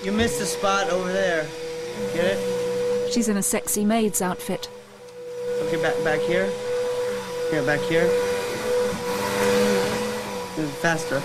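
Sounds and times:
speech: 0.0 - 4.8, 5.6 - 6.7, 7.5 - 8.3, 10.6 - 11.2
vacuum cleaner running: 0.0 - 11.2.

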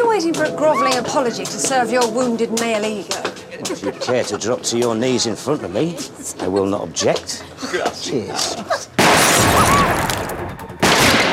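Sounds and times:
speech: 0.2 - 8.9
laughter: 3.3 - 9.0
gunfire outside a restaurant: 9.0 - 11.3.

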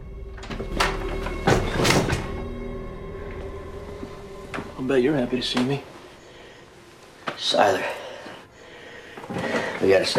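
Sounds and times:
door opening: 0.0 - 5.8
speech: 4.8 - 5.9, 7.4 - 8.0, 9.8 - 10.1.

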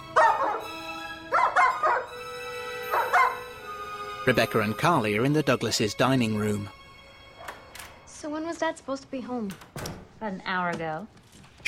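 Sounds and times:
dog barking sharply: 0.1 - 2.1, 2.9 - 3.5
speech: 4.2 - 6.8, 8.6 - 11.6.

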